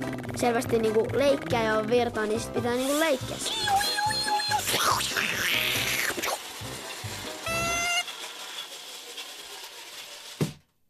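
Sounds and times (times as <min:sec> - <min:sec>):
toy car whirring and rattling: 0:00.2 - 0:10.7
speech: 0:00.4 - 0:03.9
toy car clicking: 0:02.7 - 0:10.5
shrill electronic tones: 0:03.4 - 0:06.3, 0:07.4 - 0:08.1.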